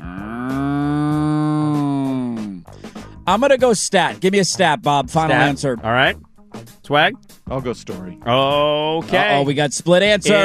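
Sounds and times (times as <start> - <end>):
cow mooing: 0.0 - 2.2
speech: 3.2 - 6.3, 6.9 - 10.4.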